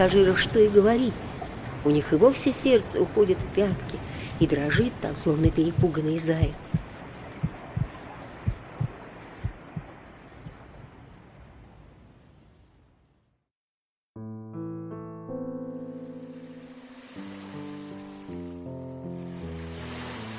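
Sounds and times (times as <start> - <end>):
speech: 0.0 - 6.8
stormy sea waves roaring: 0.0 - 12.8
deep rhythmic thuds: 4.7 - 10.6
music: 14.2 - 20.3.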